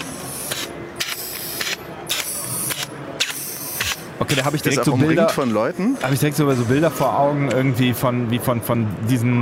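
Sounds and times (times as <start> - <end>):
large four-legged robot actuators letting out sharp hissing bursts: 0.0 - 4.7
speech: 4.3 - 9.4.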